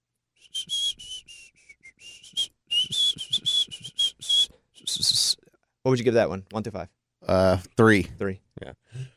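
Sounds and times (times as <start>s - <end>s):
person whistling in short breathy bursts: 0.4s - 5.4s
speech: 5.8s - 9.1s.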